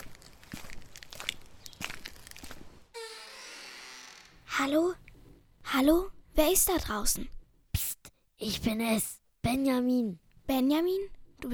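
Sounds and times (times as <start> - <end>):
crunching footsteps outside a door: 0.0 - 3.0
speech: 4.6 - 5.0, 5.7 - 7.4, 8.4 - 11.5.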